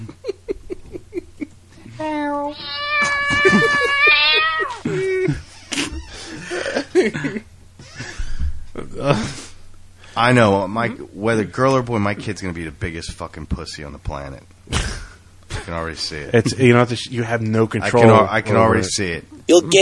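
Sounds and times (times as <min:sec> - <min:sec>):
laughter: 0:00.0 - 0:01.5, 0:03.0 - 0:09.5
speech: 0:02.0 - 0:02.8, 0:10.2 - 0:14.9, 0:15.7 - 0:19.7
voice imitating a cat with a long wavering meow: 0:02.0 - 0:04.8.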